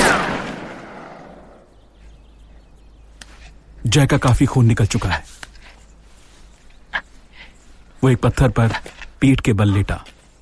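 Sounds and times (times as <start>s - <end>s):
gunshot fired from behind rocks during a shootout: 0.0s - 1.4s
speech: 3.8s - 5.4s, 8.0s - 10.1s.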